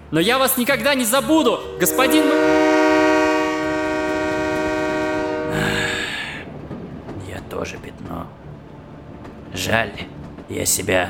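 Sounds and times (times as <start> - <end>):
rumble and hiss of a train moving: 0.0 - 11.0
speech: 0.1 - 2.6, 7.6 - 8.4, 9.6 - 11.0
train horn: 1.2 - 6.3.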